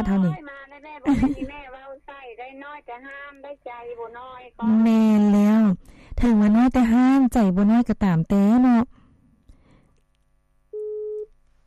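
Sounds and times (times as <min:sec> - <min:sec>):
speech: 0:00.0 - 0:01.7, 0:02.4 - 0:09.0
telephone busy tone after a call was cut off: 0:10.8 - 0:11.3.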